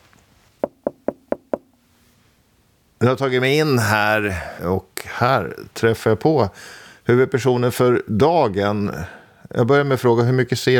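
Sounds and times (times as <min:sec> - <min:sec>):
firm knocks on a door: 0:00.6 - 0:01.7
speech: 0:03.0 - 0:10.7.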